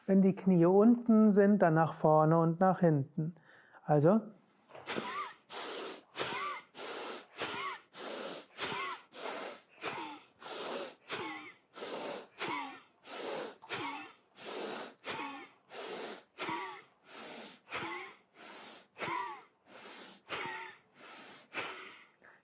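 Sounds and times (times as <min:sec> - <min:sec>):
speech: 0:00.1 - 0:05.1
forceful rhythmic yoga breathing during Bhadrasana: 0:04.8 - 0:22.4.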